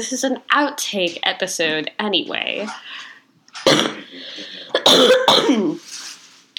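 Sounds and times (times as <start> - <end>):
speech: 0.0 - 6.0
person coughing: 3.6 - 5.8.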